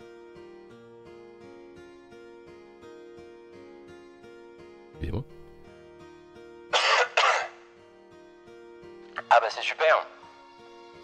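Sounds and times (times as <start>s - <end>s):
speech: 5.0s - 5.5s, 9.4s - 10.2s
double cough pushed through a tinny megaphone-like filter: 6.7s - 7.7s.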